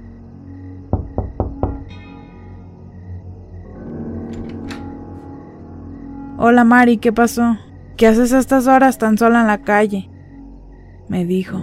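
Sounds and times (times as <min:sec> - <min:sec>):
knocking on the door of a house: 0:00.9 - 0:02.0
speech: 0:06.4 - 0:10.1, 0:11.1 - 0:11.6.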